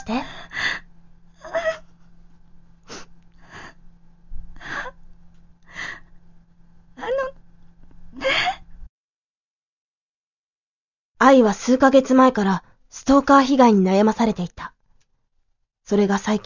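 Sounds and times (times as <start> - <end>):
speech: 0.0 - 0.3, 11.3 - 14.7, 15.9 - 16.4
woman sobbing and whimpering: 0.0 - 2.1, 4.6 - 5.0, 7.0 - 7.4, 8.2 - 8.7
faint steady hum: 0.0 - 8.9, 11.2 - 16.4.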